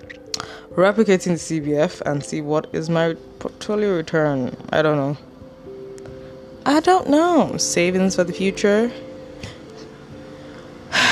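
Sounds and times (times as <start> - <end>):
breathy exhales blown into a microphone: 0.4 - 0.7, 10.5 - 11.1
speech: 0.7 - 5.3, 6.6 - 9.5.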